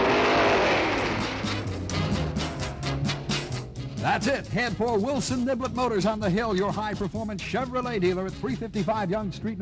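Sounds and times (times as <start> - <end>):
car engine revving: 0.0 - 4.0
speech: 4.0 - 9.5.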